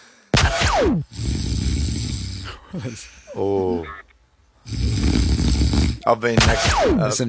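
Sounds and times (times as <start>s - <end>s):
speech: 0.8s - 1.3s, 2.7s - 4.0s, 6.0s - 7.2s
struggling snore: 1.0s - 3.9s, 4.6s - 7.0s.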